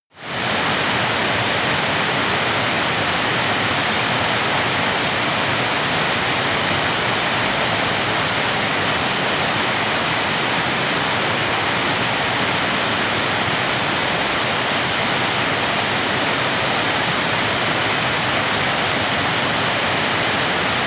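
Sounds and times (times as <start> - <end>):
medium waterfall: 0.2 - 20.8.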